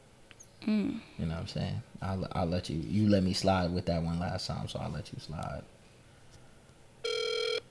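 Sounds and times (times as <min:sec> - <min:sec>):
speech: 0:00.6 - 0:05.7
steady electronic telephone tone of a phone call ringing before voicemail: 0:07.0 - 0:07.7.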